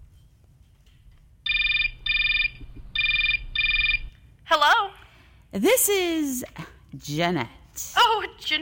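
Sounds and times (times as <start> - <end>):
low hum: 0.0 - 8.6
telephone ringback tone on an outgoing call: 1.5 - 4.1
speech: 5.5 - 8.6.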